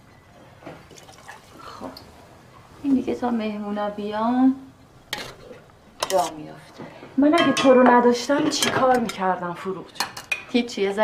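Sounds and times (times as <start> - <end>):
boiled water poured from a glass into a cooking pot: 0.8 - 2.1
speech: 2.8 - 4.7, 6.1 - 11.0.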